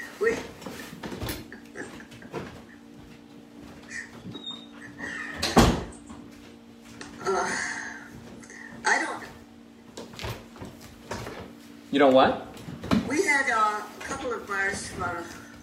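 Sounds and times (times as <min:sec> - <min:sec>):
faint steady hum: 0:00.0 - 0:15.6
door shutting with a thud: 0:05.3 - 0:06.0
speech: 0:12.0 - 0:12.5.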